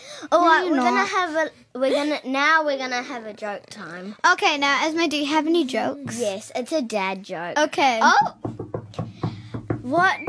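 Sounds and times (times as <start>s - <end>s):
child's brief rising voice: 0.0s - 8.4s, 9.8s - 10.2s
speech: 0.2s - 8.6s, 9.9s - 10.2s
knocking on a door: 8.0s - 10.2s.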